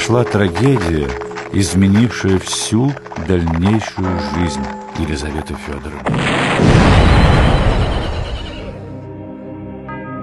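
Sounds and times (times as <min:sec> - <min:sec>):
speech: 0:00.1 - 0:06.8
loud bomb explosion with deep rumbling roar: 0:06.0 - 0:08.5.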